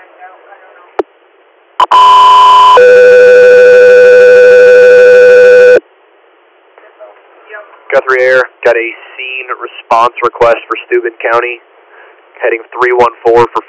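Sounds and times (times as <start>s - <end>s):
radio dispatch alert tones: 1.8s - 5.8s
faint radio chatter: 6.8s - 13.6s
speech: 8.1s - 11.7s, 12.4s - 13.6s.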